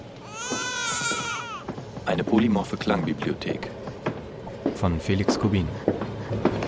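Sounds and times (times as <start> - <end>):
baby wailing in a high-pitched cry: 0.2 - 1.7
speech: 2.1 - 3.8, 4.8 - 6.5.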